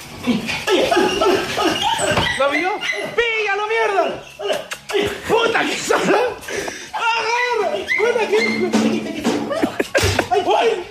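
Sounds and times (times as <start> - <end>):
laughter: 0.2 - 2.2, 7.2 - 10.8
speech: 0.2 - 10.8
dog whimpering: 0.3 - 3.3, 4.0 - 5.1, 7.0 - 8.8.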